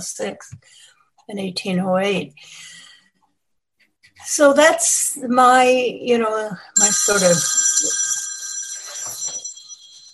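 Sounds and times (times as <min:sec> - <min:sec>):
speech: 0:00.0 - 0:02.8, 0:04.2 - 0:08.1
mobile phone ringing with a high-pitched electronic tone: 0:06.8 - 0:10.1.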